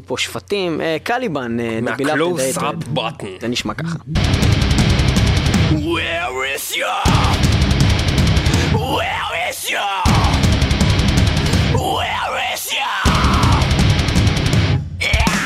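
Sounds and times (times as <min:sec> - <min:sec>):
speech: 0:00.0 - 0:05.0, 0:05.7 - 0:07.5, 0:08.9 - 0:10.4
distorted guitars in a heavy metalcore song: 0:04.2 - 0:15.4
pounding drums in a heavy metalcore song: 0:04.2 - 0:15.4
harsh screamed vocals in a heavy metalcore song: 0:05.7 - 0:07.8, 0:08.4 - 0:14.1, 0:15.0 - 0:15.4.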